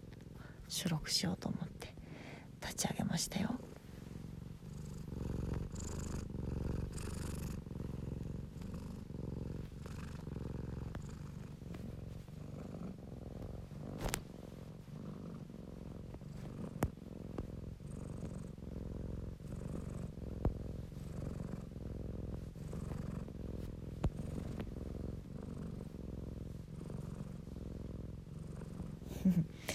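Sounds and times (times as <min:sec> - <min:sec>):
cat purring while kneading a blanket: 0:00.0 - 0:29.7
speech: 0:00.7 - 0:02.0, 0:02.6 - 0:03.7
faint clicks and rustles: 0:05.1 - 0:18.6, 0:19.6 - 0:26.0.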